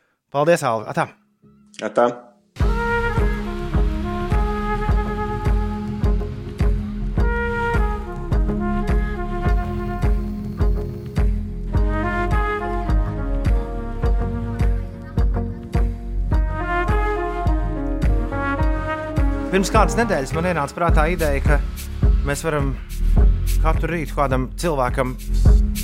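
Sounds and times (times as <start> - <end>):
speech: 0.3 - 1.2, 1.8 - 2.3, 19.6 - 22.9, 23.6 - 25.6
full-band music track with drums bass and melodic lines played on air: 2.6 - 22.3.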